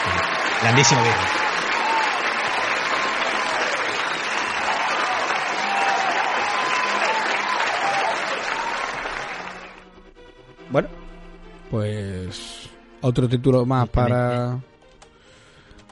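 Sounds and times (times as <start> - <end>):
sizable crowd applauding: 0.0 - 10.0
speech: 0.6 - 1.4, 10.7 - 11.0, 11.7 - 14.7.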